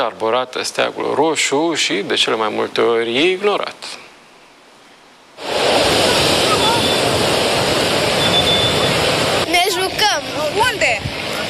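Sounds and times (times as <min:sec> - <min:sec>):
speech: 0:00.0 - 0:04.0
gusting wind at a beach: 0:04.2 - 0:11.4
sea surf waves crashing at a beach: 0:05.3 - 0:11.4.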